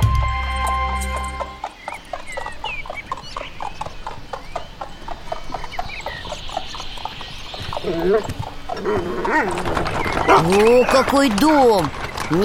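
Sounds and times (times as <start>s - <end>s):
horse hooves clip-clopping of a horse-drawn carriage: 0.1s - 12.4s
speech: 10.4s - 12.4s.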